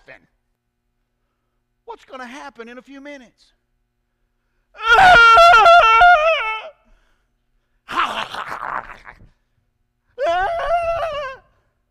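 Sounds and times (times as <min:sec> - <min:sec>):
speech: 0:00.1 - 0:00.4, 0:01.9 - 0:03.6
adult voice imitating a screaming toddler: 0:04.8 - 0:06.8, 0:07.9 - 0:09.3, 0:10.2 - 0:11.5.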